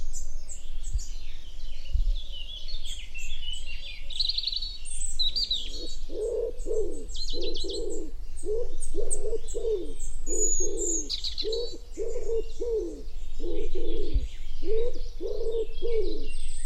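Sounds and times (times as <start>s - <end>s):
small songbirds chirping and trilling: 0.0s - 16.6s
common wood pigeon cooing: 5.6s - 16.6s.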